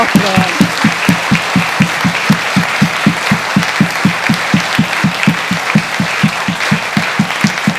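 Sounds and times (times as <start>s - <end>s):
audience clapping in steady rhythmic unison: 0.0s - 7.7s.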